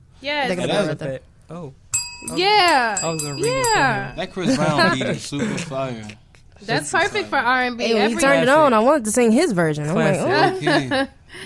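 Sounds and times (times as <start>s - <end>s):
speech: 0.2s - 11.4s
bell ringing: 1.9s - 5.0s
laughter: 4.3s - 6.1s, 10.2s - 11.1s.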